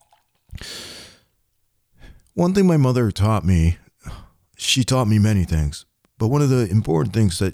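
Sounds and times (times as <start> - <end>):
cold beer pouring into a glass: 0.0 - 0.6
speech: 2.4 - 7.5.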